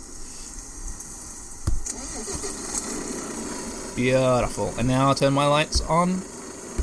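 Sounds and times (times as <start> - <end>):
faint noise: 0.0 - 6.8
red truck engine starting and idling in the rain: 1.8 - 6.8
speech: 4.0 - 6.3.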